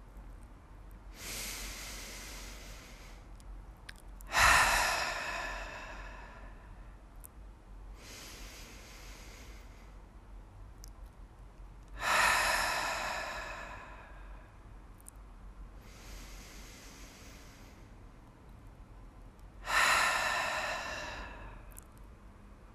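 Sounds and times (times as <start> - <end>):
slow deep cleansing breaths: 1.1 - 3.4, 4.3 - 7.0, 8.0 - 10.2, 12.0 - 14.7, 15.8 - 18.1, 19.6 - 21.9.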